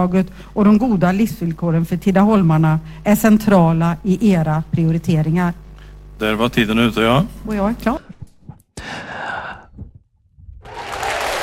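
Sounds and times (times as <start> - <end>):
speech: 0.0 - 5.6, 6.2 - 8.1
group applauding: 10.6 - 11.4.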